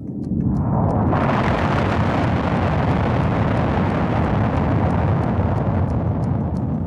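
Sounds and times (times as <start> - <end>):
atomic bomb exploding over a city: 0.0 - 6.8.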